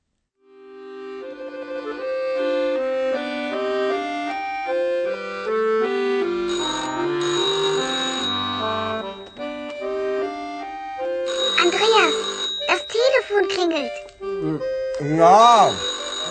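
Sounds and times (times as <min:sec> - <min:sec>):
steady melodic tones stepping from note to note: 0:02.2 - 0:16.2
telephone bell ringing at home: 0:06.3 - 0:14.0, 0:15.2 - 0:16.2.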